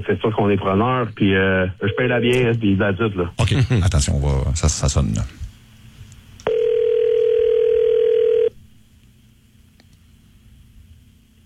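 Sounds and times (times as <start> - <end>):
speech: 0.0 - 5.4
faint noise: 0.0 - 11.4
telephone ringing tone on an outgoing call: 6.5 - 8.6.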